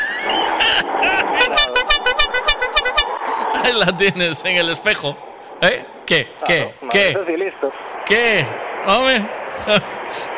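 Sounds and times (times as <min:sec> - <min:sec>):
laughter: 0:00.2 - 0:02.0, 0:03.4 - 0:04.3
squeaky nasal manual hand-operated horn honking: 0:01.3 - 0:03.3
speech: 0:03.7 - 0:10.3.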